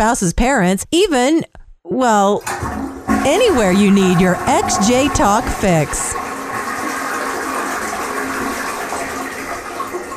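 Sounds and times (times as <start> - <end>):
speech: 0.0 - 6.2
toilet flushing: 2.4 - 10.1.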